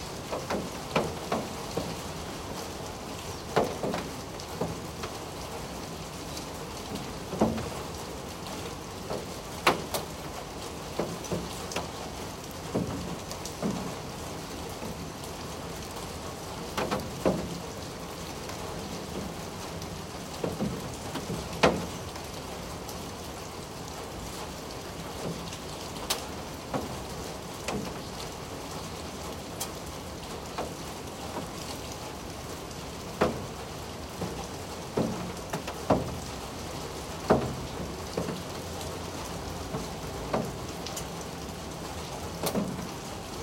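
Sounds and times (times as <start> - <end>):
steady monsoon rain on a balcony: 0.0 - 43.4
sharp drips and taps of rain: 0.2 - 5.2, 6.3 - 8.0, 9.0 - 15.1, 16.7 - 17.6, 18.4 - 22.3, 24.9 - 28.4, 33.1 - 43.0.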